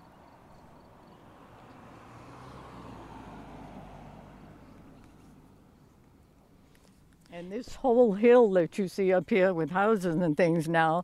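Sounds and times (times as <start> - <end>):
single car passing on the road: 0.0 - 6.6
speech: 7.4 - 11.0.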